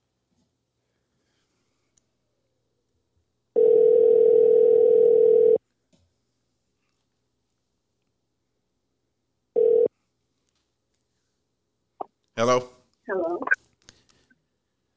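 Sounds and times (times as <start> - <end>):
telephone ringback tone while waiting for a call to be answered: 3.6 - 5.6, 9.6 - 9.9
speech: 12.4 - 13.6.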